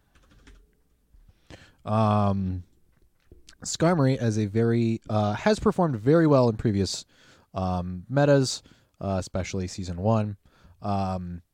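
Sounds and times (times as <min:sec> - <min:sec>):
typing on a computer keyboard: 0:00.0 - 0:00.8
speech: 0:01.5 - 0:02.7, 0:03.6 - 0:11.5.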